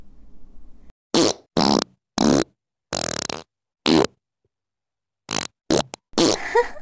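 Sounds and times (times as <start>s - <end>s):
farts: 1.1s - 4.2s, 5.3s - 6.5s
laughter: 6.3s - 6.7s.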